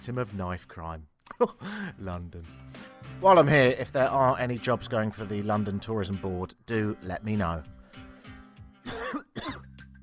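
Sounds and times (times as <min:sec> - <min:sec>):
speech: 0:00.0 - 0:09.0
person coughing harshly: 0:08.9 - 0:09.7.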